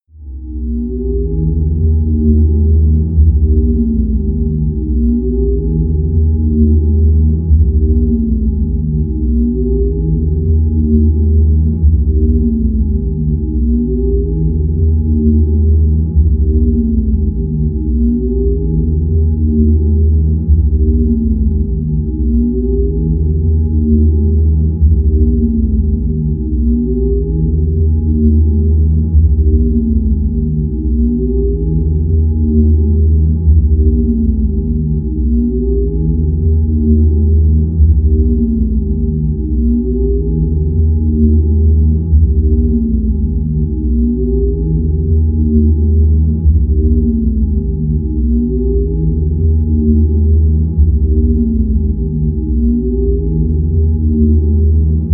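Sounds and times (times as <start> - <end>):
swirling drone: 0.2 - 55.1.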